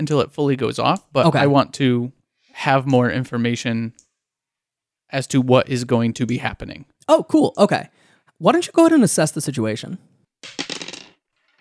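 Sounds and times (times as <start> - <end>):
speech: 0.0 - 4.0, 5.1 - 10.6
dice clattering across a hard table: 10.4 - 11.5.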